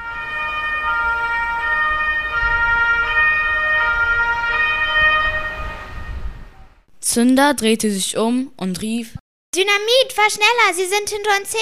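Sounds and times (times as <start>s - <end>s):
two-tone police siren wailing: 0.0s - 6.6s
low rumble of road traffic: 0.0s - 6.7s
speech: 7.1s - 11.5s.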